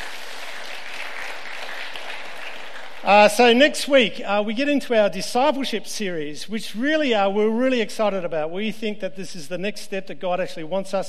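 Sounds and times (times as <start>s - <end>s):
congregation applauding: 0.0s - 3.6s
speech: 3.0s - 11.0s.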